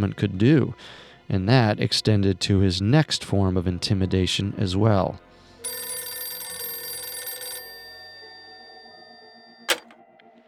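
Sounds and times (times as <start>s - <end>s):
speech: 0.0s - 5.8s
old-style home telephone bell ringing: 5.6s - 10.0s.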